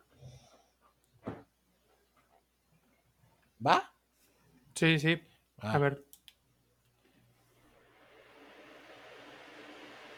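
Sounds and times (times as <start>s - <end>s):
speech: 3.6s - 3.9s, 4.8s - 6.1s
electric fan running: 7.7s - 10.1s.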